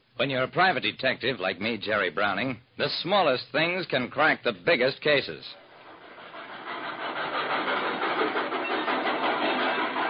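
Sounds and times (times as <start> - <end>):
speech: 0.2 - 5.6
train rumbling along: 5.5 - 10.0
rhythmic clatter of train wheels on rails: 5.6 - 10.0.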